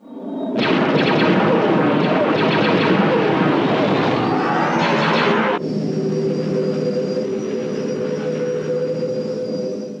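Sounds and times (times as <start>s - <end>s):
sci-fi X-Wing starfighter engines rumbling in a trench dive: 0.3s - 9.9s
sci-fi starfighter laser fire crackling: 0.6s - 4.3s
steady humming engine drone with a high whine: 4.2s - 9.9s.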